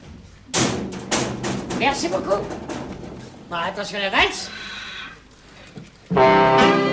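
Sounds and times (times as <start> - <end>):
door rattling as it settles: 0.0 - 4.8
door shutting with a thud: 0.5 - 4.4
speech: 1.8 - 2.6, 3.5 - 4.7, 6.1 - 6.8.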